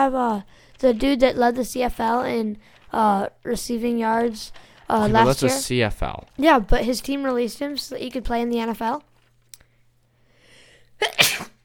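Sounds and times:
speech: 0.0 - 9.1, 11.0 - 11.5
faint intake of breath: 10.2 - 11.0
single loud breathy sneeze: 11.0 - 11.6.

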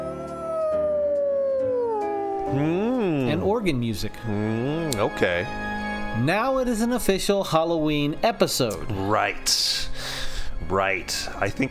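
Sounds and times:
wolf howl: 0.0 - 3.4
speech: 2.5 - 11.6.

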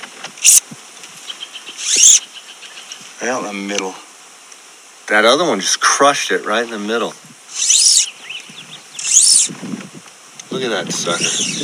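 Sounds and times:
shrill high-pitched insect buzzes: 0.4 - 0.6, 1.2 - 2.9, 7.5 - 9.6, 11.0 - 11.6
speech: 3.2 - 4.1, 5.1 - 7.7, 10.6 - 11.6.

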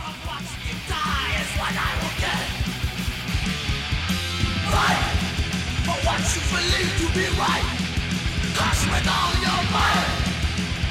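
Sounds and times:
harsh shouted thrash metal vocal: 0.0 - 2.9, 4.5 - 10.9
thrash metal distorted guitars: 0.0 - 10.9
thrash metal rapid pounding drums: 0.0 - 10.9
speech: 6.3 - 7.8, 8.6 - 10.2.

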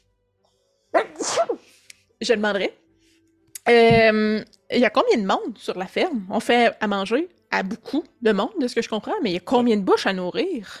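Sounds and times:
person sneezing: 1.0 - 1.8
speech: 2.2 - 2.8, 3.7 - 10.7.

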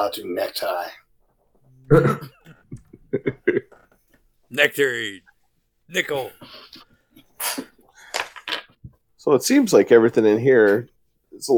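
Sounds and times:
speech: 0.0 - 1.0, 1.9 - 2.4, 3.1 - 3.7, 4.5 - 5.3, 5.9 - 7.7, 9.2 - 11.5
laughter: 1.8 - 3.8
person acting out a coughing fit: 1.9 - 2.6.

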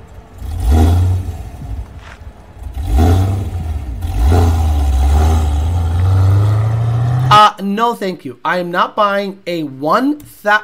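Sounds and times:
cammed manual car engine revving hard with lopey idle: 0.0 - 7.4
speech: 7.6 - 10.6.

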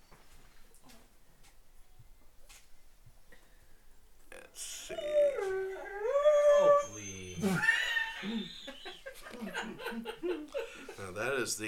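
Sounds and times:
dog howling: 4.8 - 8.5
people laughing: 7.4 - 11.2
speech: 11.4 - 11.6.

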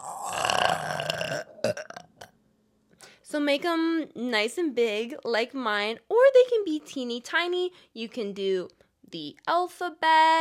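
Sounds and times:
long drawn-out burp: 0.0 - 2.4
short guttural hiccup-like bursts: 0.0 - 2.4
speech: 3.3 - 10.3.

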